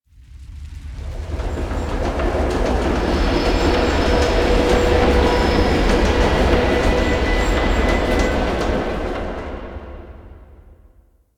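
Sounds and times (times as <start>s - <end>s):
asteroid mining machines ambience: 1.1s - 9.6s.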